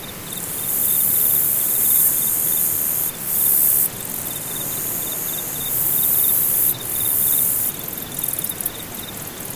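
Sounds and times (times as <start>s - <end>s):
insects: 0.0s - 9.5s.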